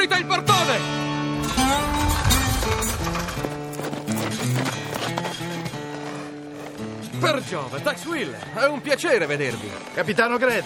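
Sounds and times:
speech: 0:00.0 - 0:01.0, 0:07.2 - 0:10.6
loud orchestral music score: 0:01.4 - 0:04.6
horse hooves clip-clopping in a steady rapid rhythm: 0:02.2 - 0:10.6.

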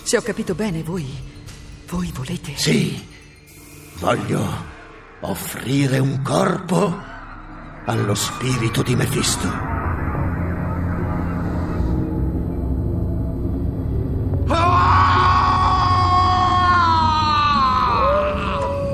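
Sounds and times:
speech: 0:00.1 - 0:03.2, 0:04.0 - 0:07.1, 0:07.9 - 0:09.7
low rumbling drone: 0:06.2 - 0:18.9
bloodcurdling piercing scream: 0:14.4 - 0:18.9.

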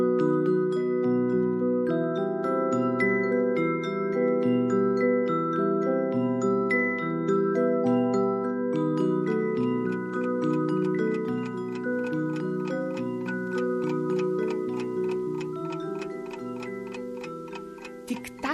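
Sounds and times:
gentle tinkling melody: 0:00.0 - 0:18.5
pocket watch ticking: 0:09.3 - 0:18.5.

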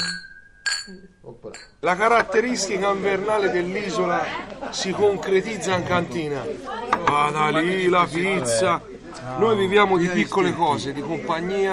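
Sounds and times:
glasses clinking in a toast: 0:00.0 - 0:01.8
speech: 0:00.9 - 0:11.7.

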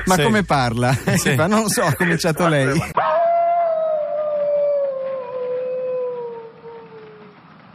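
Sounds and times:
laughter: 0:00.0 - 0:03.0
speech: 0:00.0 - 0:03.1
single wolf howling: 0:03.0 - 0:07.5.

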